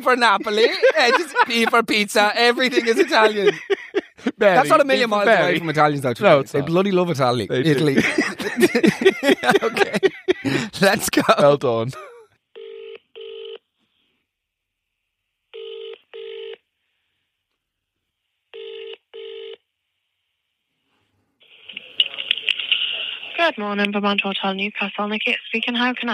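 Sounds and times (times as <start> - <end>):
speech: 0.0 - 3.8, 4.4 - 12.1, 23.4 - 26.1
laughter: 0.0 - 6.8, 7.5 - 12.2
telephone double-ring ringing tone: 12.6 - 13.6, 15.6 - 16.6, 18.6 - 19.6.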